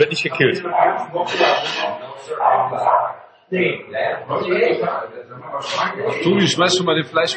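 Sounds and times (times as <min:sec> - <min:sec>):
speech: 0:00.0 - 0:07.3
dog barking: 0:02.4 - 0:03.2.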